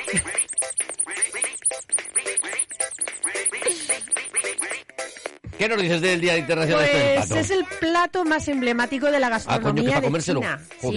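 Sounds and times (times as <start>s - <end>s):
rubber duck toy quacking in a studio: 0.0s - 4.9s
speech: 0.1s - 0.4s, 5.6s - 10.9s.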